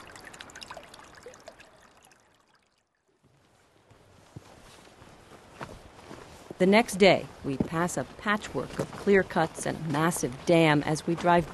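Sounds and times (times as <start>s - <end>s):
small splashes and drips of spring water: 0.0s - 3.2s
spring water bubbling and gurgling up from the ground: 0.0s - 3.2s
speech: 6.6s - 11.5s.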